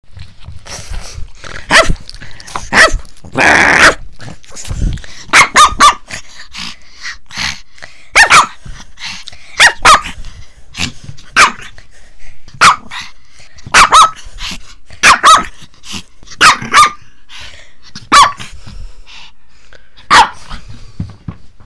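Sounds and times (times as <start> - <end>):
small dogs barking: 1.6 - 4.7, 5.3 - 6.2, 8.1 - 8.8, 9.6 - 11.8, 12.5 - 13.1, 13.7 - 17.1, 18.0 - 18.5, 20.1 - 20.5.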